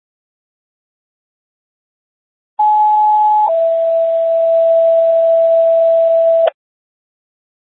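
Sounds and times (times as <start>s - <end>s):
non-emergency radio test tones sent to a station: 2.6s - 6.6s.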